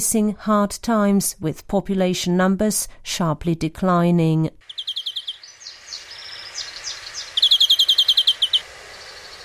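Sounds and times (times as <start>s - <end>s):
speech: 0.0s - 4.7s
European greenfinch singing, chirping and trilling: 4.6s - 9.4s.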